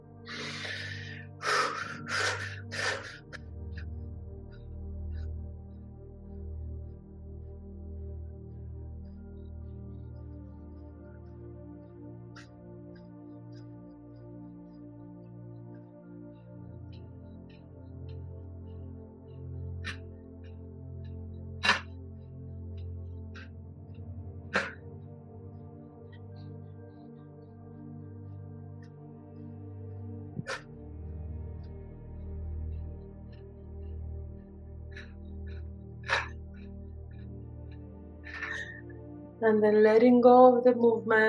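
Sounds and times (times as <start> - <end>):
low droning background: 0.0 - 41.2
rapid heavy breathing with noisy exhalations and gasps: 0.3 - 3.4, 21.6 - 21.9, 36.0 - 36.5
speech: 39.4 - 41.2.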